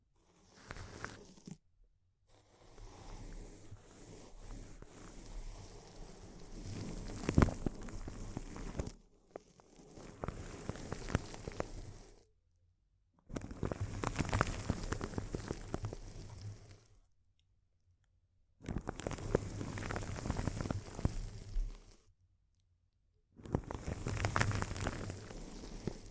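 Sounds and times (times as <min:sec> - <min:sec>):
close-up crinkling: 0:00.5 - 0:01.6, 0:04.8 - 0:12.1, 0:13.3 - 0:17.0, 0:18.7 - 0:22.1, 0:23.4 - 0:26.1.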